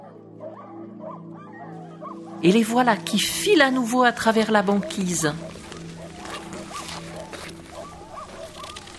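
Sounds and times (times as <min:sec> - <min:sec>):
lead sled dog yipping and whining: 0:00.0 - 0:02.4, 0:04.8 - 0:08.9
speech: 0:02.4 - 0:05.5.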